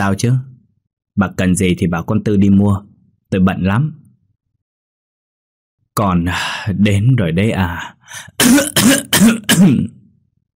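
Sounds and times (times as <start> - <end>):
speech: 0.0 - 0.5, 1.2 - 4.0, 6.0 - 10.0
elderly woman coughing: 8.4 - 9.8.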